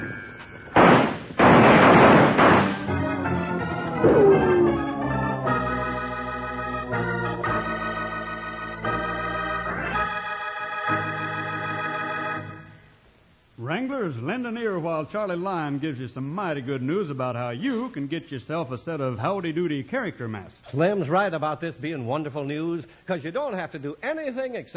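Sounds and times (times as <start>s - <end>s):
gunshots in a western shootout: 0.8s - 4.7s
orchestral music: 2.4s - 10.0s
speech: 14.4s - 24.7s.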